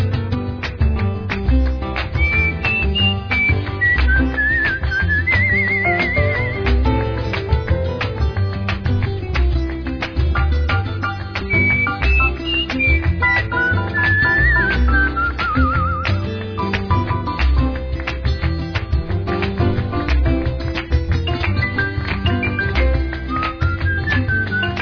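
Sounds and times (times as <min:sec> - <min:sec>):
steady band accompaniment in a song: 0:00.0 - 0:24.7
whistled melody with slight wavering vibrato: 0:02.0 - 0:07.4, 0:10.7 - 0:17.8, 0:21.2 - 0:24.7.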